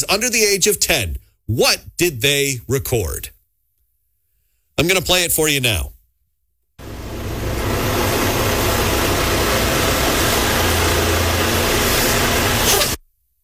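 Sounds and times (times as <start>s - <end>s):
speech: 0.0s - 3.4s, 4.8s - 5.9s
large vehicle engine rumble of garbage truck collecting bins: 6.8s - 13.0s.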